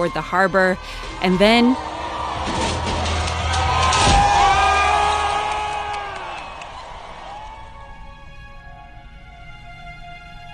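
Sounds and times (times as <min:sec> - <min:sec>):
speech: 0:00.0 - 0:02.6
crowd of protesters cheering as they topple a statue in a city street: 0:01.0 - 0:08.8.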